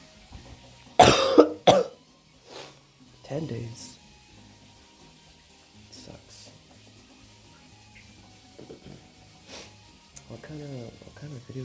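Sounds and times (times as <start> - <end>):
person coughing: 1.0 - 2.0
speech: 3.4 - 4.0.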